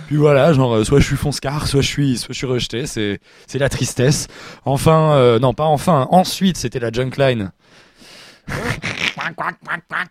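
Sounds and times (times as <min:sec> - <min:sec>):
speech: 0:00.1 - 0:07.9, 0:08.5 - 0:10.0
person imitating duck quacks: 0:08.6 - 0:10.0.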